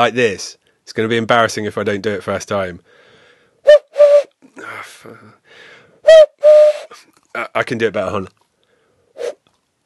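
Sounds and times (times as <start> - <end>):
speech: 0.0 - 3.0, 3.6 - 3.8, 4.6 - 6.6, 7.4 - 8.4
faint breathy rush: 2.8 - 3.6, 4.6 - 6.0
hollow owl hoots blown through cupped hands: 3.6 - 4.4, 6.0 - 7.0, 9.2 - 9.4.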